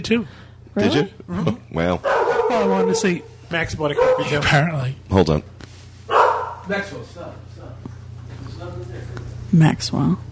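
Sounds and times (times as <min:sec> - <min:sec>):
speech: 0:00.0 - 0:05.5, 0:06.7 - 0:07.9, 0:08.6 - 0:10.3
low steady hum: 0:00.0 - 0:10.3
dog barking: 0:02.0 - 0:03.3, 0:03.9 - 0:04.5, 0:06.1 - 0:06.7.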